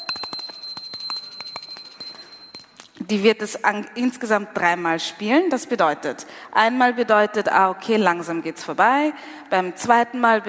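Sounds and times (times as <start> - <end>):
hand bell ringing rapidly: 0.0 - 2.8
speech: 3.1 - 10.4.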